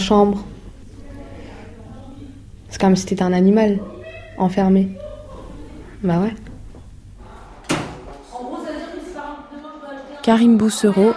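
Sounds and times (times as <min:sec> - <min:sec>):
speech: 0:00.0 - 0:00.5, 0:02.8 - 0:05.0, 0:06.0 - 0:06.4, 0:10.3 - 0:11.1
voices talking: 0:00.0 - 0:11.1
laughter: 0:04.9 - 0:06.0
door shutting: 0:06.5 - 0:08.3.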